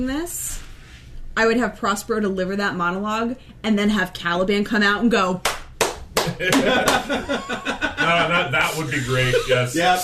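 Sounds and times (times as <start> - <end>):
speech: 1.4 - 5.5, 6.3 - 10.0
slow hand claps: 5.4 - 7.2
laughter: 6.2 - 9.8.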